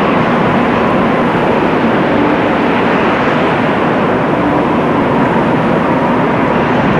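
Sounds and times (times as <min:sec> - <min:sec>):
desert wind: 0:00.0 - 0:06.9.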